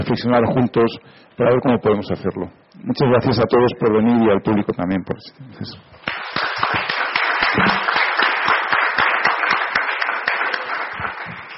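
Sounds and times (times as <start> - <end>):
speech: 0.1 - 6.8
crowd applause: 6.0 - 11.5.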